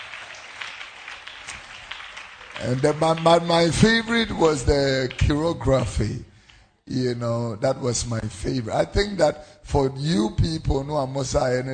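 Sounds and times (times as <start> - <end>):
crowd of people clapping in sustained applause: 0.0 - 5.5
speech: 2.6 - 6.3, 6.9 - 11.7.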